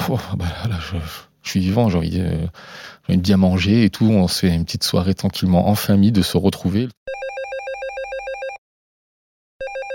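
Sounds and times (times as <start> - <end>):
speech: 0.1 - 7.2
telephone ringing with a rapid trilling bell: 7.1 - 8.6, 9.6 - 9.9.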